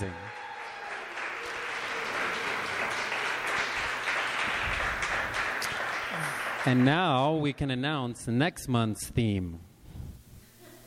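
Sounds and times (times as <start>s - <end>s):
crowd applauding: 0.0s - 7.2s
speech: 6.6s - 9.7s.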